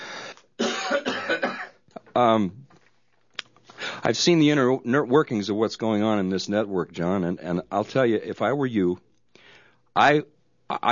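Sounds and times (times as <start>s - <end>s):
person coughing harshly: 0.6s - 1.8s
speech: 2.2s - 2.6s, 4.0s - 9.1s, 10.0s - 10.8s.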